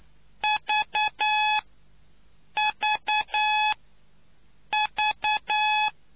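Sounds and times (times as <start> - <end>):
Morse code signals as a steady-pitched keyed tone: 0.4 - 1.6, 2.6 - 3.8, 4.7 - 5.9.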